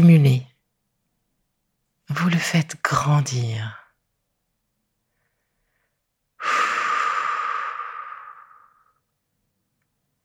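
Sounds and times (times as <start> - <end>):
speech: 2.4 - 3.8
long slow breath during a guided relaxation exercise: 5.0 - 9.1.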